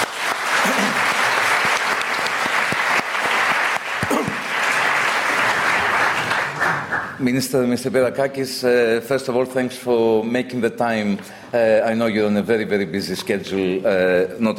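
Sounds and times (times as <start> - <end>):
audience applauding: 0.0 - 7.2
speech: 7.2 - 14.5.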